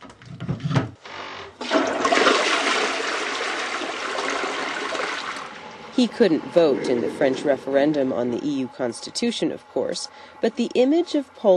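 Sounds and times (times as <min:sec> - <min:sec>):
water swirling and refilling the toilet bowl: 0:01.6 - 0:05.9
newly installed toilet flushing in a small apartment: 0:01.6 - 0:09.1
speech: 0:06.0 - 0:11.5.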